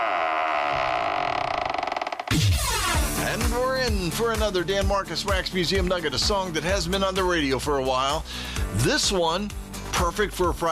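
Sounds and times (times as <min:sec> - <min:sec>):
heavy metal vault door creaking open: 0:00.0 - 0:03.2
speech: 0:02.3 - 0:10.7.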